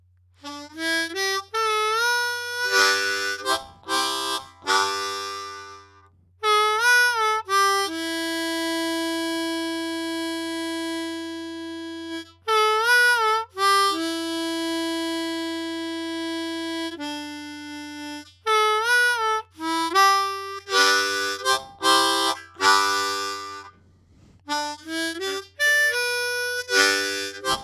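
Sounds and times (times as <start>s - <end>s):
blues music recorded with a Shure BG 3.1 microphone: 0.4s - 23.8s, 24.5s - 27.6s.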